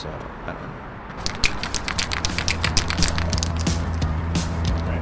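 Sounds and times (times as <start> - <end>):
speech: 0.0 - 1.3
spray paint can hissy bursts: 1.2 - 4.5
spray paint can ball rattling: 1.2 - 4.9.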